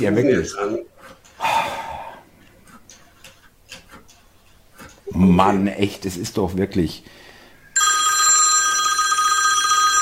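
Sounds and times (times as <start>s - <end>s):
speech: 0.0s - 0.9s, 5.1s - 7.2s
telephone ringing with a steady bright electronic tone: 7.8s - 9.9s.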